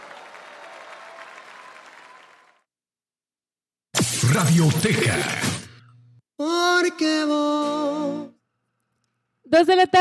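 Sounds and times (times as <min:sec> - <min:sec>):
applause from a group of people for a singer: 0:00.0 - 0:02.7
speech: 0:04.1 - 0:05.5, 0:06.4 - 0:08.3, 0:09.5 - 0:10.0.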